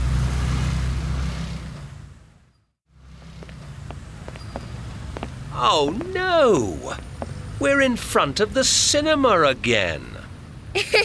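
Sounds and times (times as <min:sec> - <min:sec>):
road traffic with passing cars: 0:00.0 - 0:11.0
footsteps on the street: 0:03.1 - 0:07.5
speech: 0:05.6 - 0:10.2, 0:10.8 - 0:11.0.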